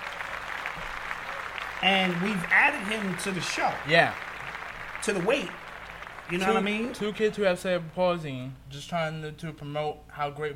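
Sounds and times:
small group applauding: 0:00.0 - 0:08.1
speech: 0:01.8 - 0:04.3, 0:05.0 - 0:05.6, 0:06.3 - 0:10.5.

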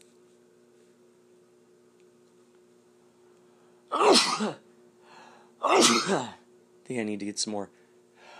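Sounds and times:
person sneezing: 0:03.9 - 0:04.6, 0:05.6 - 0:06.4
speech: 0:03.9 - 0:04.6, 0:05.6 - 0:07.8.

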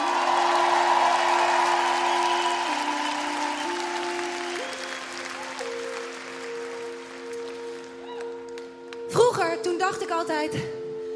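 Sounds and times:
people whooping: 0:00.0 - 0:06.1, 0:08.0 - 0:08.4
large audience applauding: 0:00.0 - 0:09.0
speech: 0:09.6 - 0:10.8.

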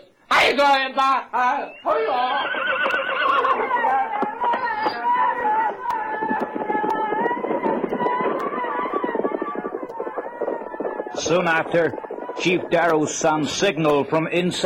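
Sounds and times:
speech: 0:00.5 - 0:03.0, 0:11.2 - 0:14.6
horses whinnying and snorting: 0:02.4 - 0:03.6
horse hooves clip-clopping: 0:02.6 - 0:14.6.

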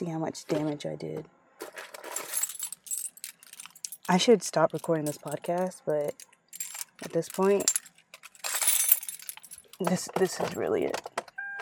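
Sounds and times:
speech: 0:00.0 - 0:01.9, 0:04.1 - 0:06.3, 0:07.0 - 0:07.8, 0:09.8 - 0:11.1
keys shaking and clinking in a car: 0:01.9 - 0:10.9.

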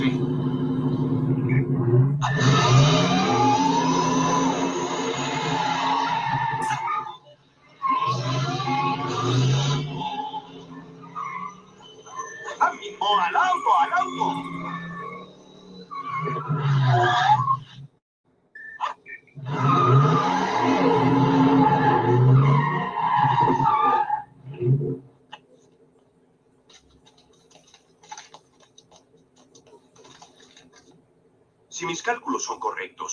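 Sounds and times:
speeding car engine roaring: 0:00.0 - 0:18.0, 0:19.3 - 0:25.3
speeding car tires squealing: 0:00.0 - 0:18.0, 0:19.2 - 0:25.1
speech: 0:32.4 - 0:33.1.

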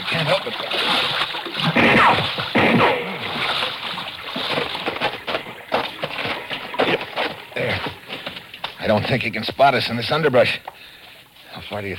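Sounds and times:
water sloshing and splashing from someone wading through shallows: 0:00.0 - 0:09.4
speech: 0:08.9 - 0:10.7, 0:11.7 - 0:11.9.

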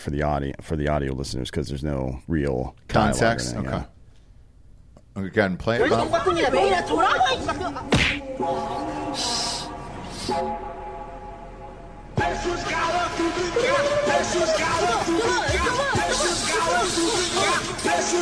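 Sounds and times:
speech: 0:00.0 - 0:04.0, 0:05.2 - 0:09.5, 0:10.3 - 0:10.7, 0:12.2 - 0:18.2
people talking and exclaiming loudly: 0:05.8 - 0:10.3, 0:12.4 - 0:18.2
woman's punches landing on a man's face: 0:07.9 - 0:08.2.

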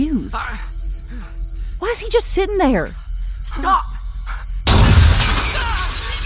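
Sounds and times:
speech: 0:02.0 - 0:03.9
broken glass crashing and scattering: 0:04.7 - 0:06.2
car back window shattering: 0:04.7 - 0:06.2
shotgun blast: 0:04.7 - 0:06.2.

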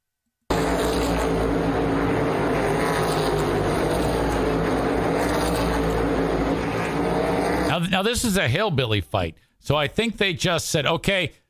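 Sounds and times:
race car engines roaring: 0:00.5 - 0:08.0
speech: 0:07.8 - 0:11.4.

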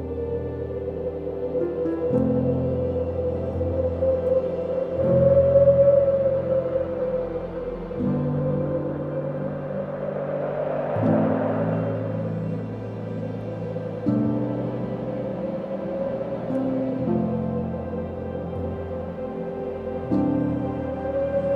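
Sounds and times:
deep sustained bass: 0:00.0 - 0:21.5
gentle wind: 0:00.0 - 0:21.5
soft calming piano chords: 0:00.0 - 0:21.5.

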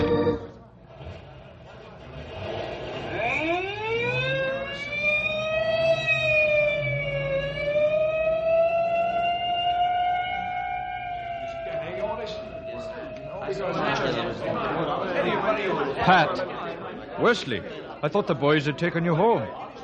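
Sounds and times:
ambulance siren wailing: 0:00.0 - 0:00.6, 0:03.0 - 0:14.8
faint voices murmuring: 0:00.0 - 0:19.8
speech: 0:16.0 - 0:16.5, 0:17.2 - 0:19.6.

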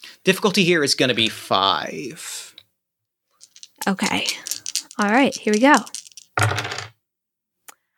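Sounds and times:
speech: 0:00.2 - 0:02.4, 0:03.8 - 0:06.6
dice clattering across a hard table: 0:03.4 - 0:07.0.

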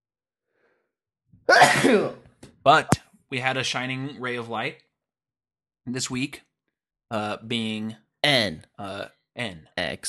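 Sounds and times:
faint intake of breath: 0:00.5 - 0:01.0
loud sneeze into the microphone: 0:01.5 - 0:02.2
speech: 0:01.5 - 0:04.8, 0:05.8 - 0:06.5, 0:07.1 - 0:10.0.

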